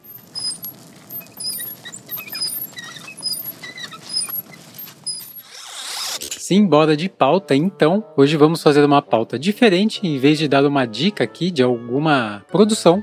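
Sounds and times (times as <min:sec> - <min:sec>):
child's tricycle rolling along hotel corridors: 0:00.0 - 0:06.2
speech: 0:06.5 - 0:13.0.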